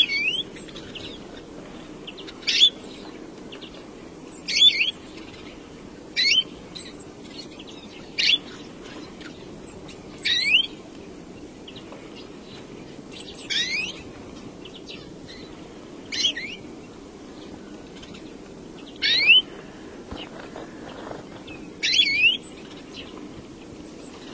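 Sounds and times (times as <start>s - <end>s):
European greenfinch calls: 0.0s - 10.8s, 13.1s - 14.0s, 14.6s - 16.7s, 18.8s - 23.2s
low background hiss: 0.0s - 24.3s.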